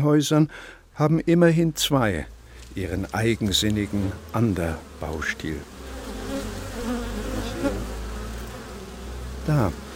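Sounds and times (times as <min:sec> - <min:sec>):
speech: 0:00.0 - 0:05.7, 0:09.5 - 0:09.8
many bees buzzing from a wooden hut: 0:02.0 - 0:09.9.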